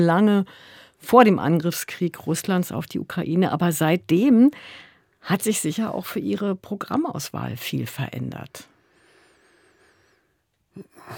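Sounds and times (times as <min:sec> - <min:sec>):
speech: 0:00.0 - 0:08.7, 0:10.8 - 0:11.1
person breathing heavily: 0:08.8 - 0:11.1.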